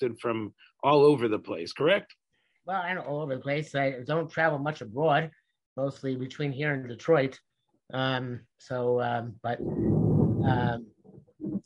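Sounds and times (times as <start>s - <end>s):
speech: 0.0s - 11.6s
deep loud rumble of thunder: 9.6s - 10.8s
person making drawn-out voiced sounds: 9.6s - 10.8s.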